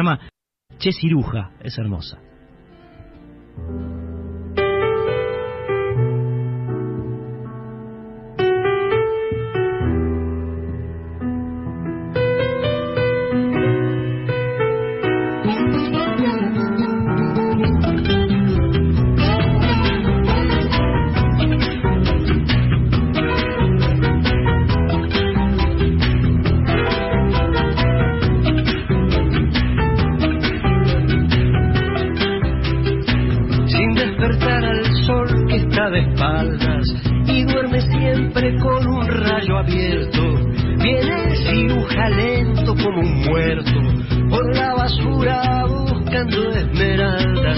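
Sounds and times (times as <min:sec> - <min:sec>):
speech: 0:00.0 - 0:02.3, 0:03.6 - 0:04.1
sustained melodic instrumental phrases: 0:00.7 - 0:47.5
full band playing a 1970s style song: 0:16.9 - 0:33.9.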